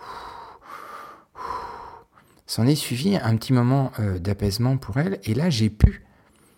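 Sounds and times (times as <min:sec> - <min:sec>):
person breathing deeply and forcefully: 0:00.0 - 0:02.4
speech: 0:02.5 - 0:06.1.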